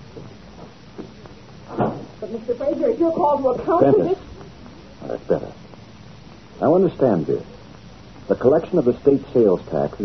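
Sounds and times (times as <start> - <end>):
door swinging shut with a soft thud: 1.7 - 2.2
speech: 2.3 - 4.2, 5.1 - 5.6, 6.6 - 7.5, 8.3 - 10.0.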